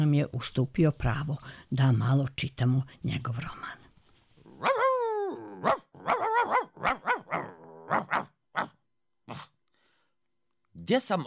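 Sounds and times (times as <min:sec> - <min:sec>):
speech: 0:00.0 - 0:03.8, 0:05.6 - 0:06.2, 0:06.8 - 0:07.1, 0:10.9 - 0:11.2
dog whining yelp: 0:04.5 - 0:09.4
dog barking sharply: 0:04.6 - 0:05.0, 0:05.6 - 0:09.5.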